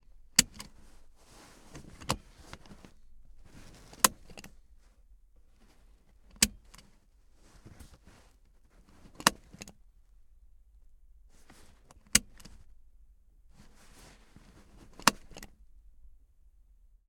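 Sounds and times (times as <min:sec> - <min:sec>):
Toyota C-HR seatbelt latch clicking: 0:00.2 - 0:04.6, 0:05.6 - 0:07.0, 0:08.9 - 0:09.8, 0:11.4 - 0:12.7, 0:14.6 - 0:15.6.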